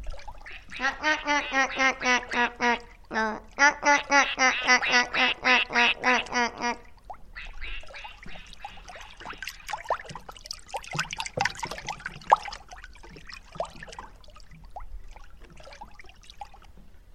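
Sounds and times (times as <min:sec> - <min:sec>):
ducks paddling away on a lake: 0:00.0 - 0:17.1
ducks on a lake quacking: 0:00.4 - 0:09.8.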